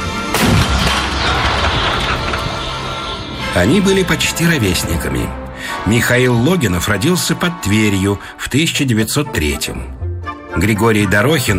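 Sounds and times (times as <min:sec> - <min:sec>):
Soviet 85 mm anti-aircraft gun firing a shot: 0:00.2 - 0:03.3
speech: 0:03.6 - 0:10.0, 0:10.6 - 0:11.5.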